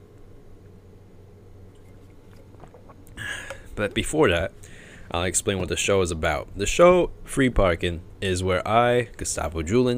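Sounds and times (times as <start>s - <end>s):
sipping water: 1.8s - 3.7s
speech: 3.8s - 9.9s.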